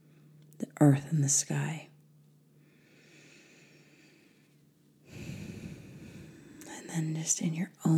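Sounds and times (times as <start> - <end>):
speech: 0.8 - 1.9, 7.0 - 7.9
deep inhale during a guided breathing exercise: 2.6 - 6.7.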